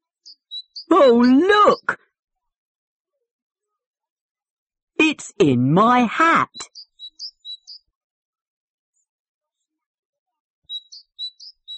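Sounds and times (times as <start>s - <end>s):
small bird chirping: 0.0s - 2.0s, 6.5s - 7.9s, 10.7s - 11.7s
speech: 0.3s - 2.0s, 5.0s - 6.8s.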